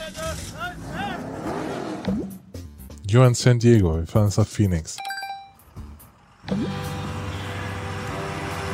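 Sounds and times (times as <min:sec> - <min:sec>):
truck engine revving in a video game: 0:00.0 - 0:02.6, 0:05.7 - 0:08.7
speech: 0:02.1 - 0:02.4, 0:03.1 - 0:05.1.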